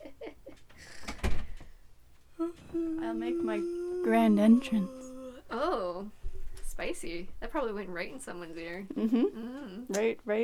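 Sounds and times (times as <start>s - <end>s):
door closing with a rattle and thud: 1.0s - 1.7s
speech: 2.8s - 6.2s, 6.8s - 10.4s.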